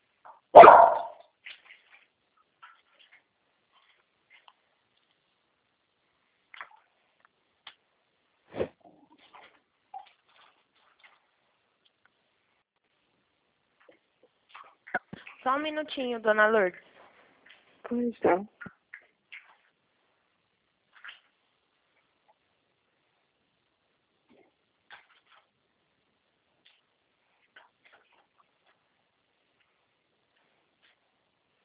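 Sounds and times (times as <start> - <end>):
dog barking: 0.5 - 1.2
speech: 15.4 - 16.9, 17.9 - 18.6.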